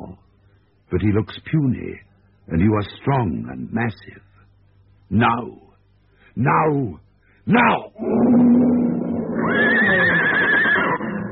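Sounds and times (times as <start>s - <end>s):
speech: 0.9s - 4.3s, 5.1s - 5.6s, 6.4s - 8.8s
horse neighing in panic as lions close in: 8.3s - 11.2s.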